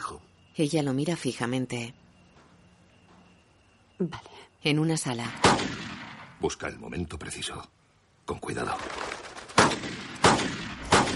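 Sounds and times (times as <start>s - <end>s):
steady hum: 0.0s - 11.1s
speech: 0.6s - 2.0s, 4.0s - 5.8s, 6.4s - 9.0s
gunshots in a hunting video game: 5.3s - 6.2s, 9.5s - 11.1s.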